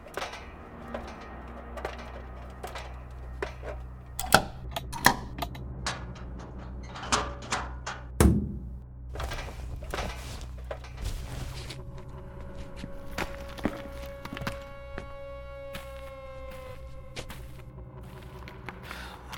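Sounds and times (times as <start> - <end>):
footsteps climbing stairs from a tunnel toward a basement door: 0.0 - 15.1
low rumbling background: 0.0 - 19.3.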